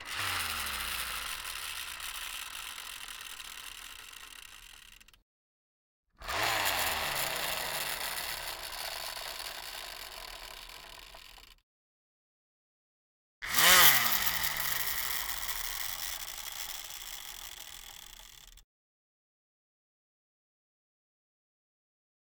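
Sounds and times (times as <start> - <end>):
toy cars: 0.0 - 5.2, 6.2 - 11.6, 13.4 - 18.6.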